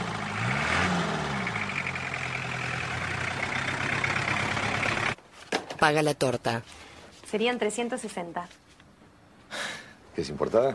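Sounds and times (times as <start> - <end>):
tow truck heavy engine rumbling on a street in Buenos Aires: 0.0 - 5.2
speech: 5.8 - 8.6, 10.2 - 10.7.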